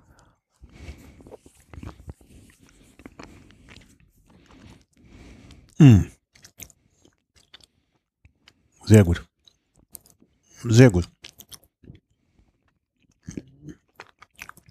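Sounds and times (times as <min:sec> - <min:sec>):
soft chewing on a small item held on the tongue: 0:00.0 - 0:14.7
slurp of a sip of rum: 0:00.6 - 0:05.7
speech: 0:05.8 - 0:06.1, 0:08.9 - 0:09.3, 0:10.6 - 0:11.2.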